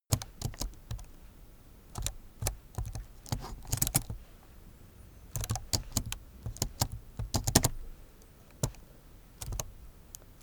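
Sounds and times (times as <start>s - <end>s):
laptop keyboard typing for a game sequence: 0.1s - 1.2s, 1.9s - 4.2s, 5.3s - 7.8s, 8.5s - 8.8s, 9.4s - 10.4s.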